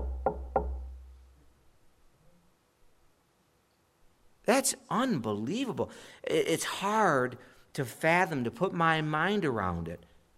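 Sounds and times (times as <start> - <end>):
firm dull woody knocks on a door: 0.0 - 1.0
speech: 4.5 - 10.1.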